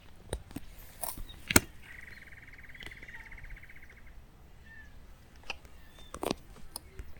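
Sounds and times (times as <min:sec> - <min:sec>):
great antshrike Taraba major calling: 0:00.0 - 0:07.1.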